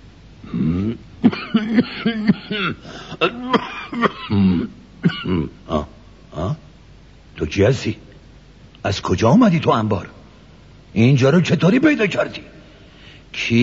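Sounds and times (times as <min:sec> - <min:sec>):
man coughing and clearing his throat: 0:00.5 - 0:06.6
speech: 0:01.7 - 0:05.6, 0:07.5 - 0:08.0, 0:08.8 - 0:10.2, 0:10.9 - 0:12.6, 0:13.3 - 0:13.6.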